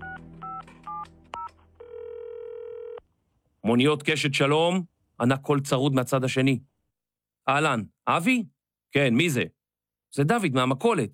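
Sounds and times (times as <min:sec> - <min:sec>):
long steady mobile phone tone on speakerphone: 0:00.0 - 0:03.0
speech: 0:03.6 - 0:06.7, 0:07.4 - 0:11.1.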